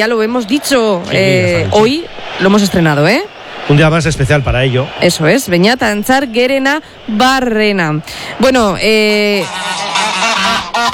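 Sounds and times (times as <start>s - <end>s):
speech: 0.0s - 10.0s
goose-like honking: 9.2s - 10.9s.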